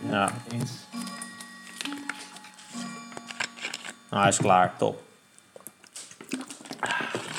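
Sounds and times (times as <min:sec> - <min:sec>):
speech: 0:00.1 - 0:01.0, 0:04.1 - 0:05.1
clock alarm sounding electronic tones: 0:00.4 - 0:04.7.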